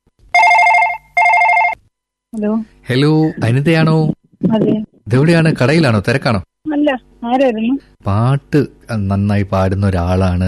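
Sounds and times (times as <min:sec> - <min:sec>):
telephone ringing on an outgoing call: 0:00.3 - 0:01.8
speech: 0:02.4 - 0:10.4.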